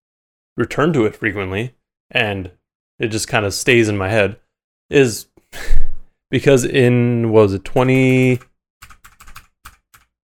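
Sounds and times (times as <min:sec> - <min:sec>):
speech: 0:00.6 - 0:08.5
typing on a computer keyboard: 0:07.7 - 0:10.2.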